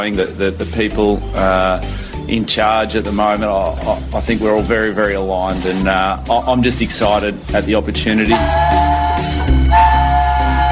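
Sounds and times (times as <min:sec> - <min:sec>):
speech: 0:00.0 - 0:08.8
express train rumbling past with heavy low roar of carriages: 0:08.3 - 0:10.7.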